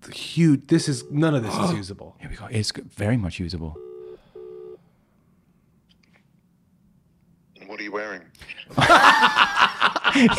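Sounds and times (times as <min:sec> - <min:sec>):
quiet hum: 0:00.0 - 0:10.3
speech: 0:00.4 - 0:03.9, 0:10.2 - 0:10.3
outgoing WhatsApp call ringing tone: 0:03.8 - 0:04.8
laughter: 0:08.7 - 0:10.3.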